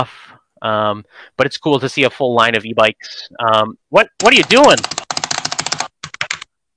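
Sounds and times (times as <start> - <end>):
speech: 0.0 - 5.0
clacky typing on a mechanical keyboard: 4.2 - 6.5.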